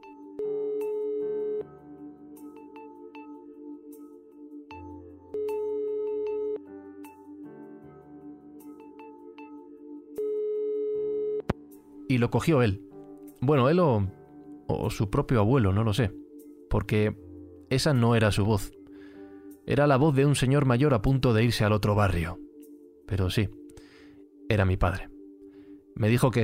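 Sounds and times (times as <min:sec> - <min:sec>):
soft music: 0:00.0 - 0:26.4
phone ringback tone: 0:00.3 - 0:01.8, 0:05.3 - 0:06.7, 0:10.2 - 0:11.5
speech: 0:12.2 - 0:16.2, 0:16.8 - 0:18.8, 0:19.7 - 0:22.4, 0:23.1 - 0:23.6, 0:24.5 - 0:25.1, 0:26.0 - 0:26.4.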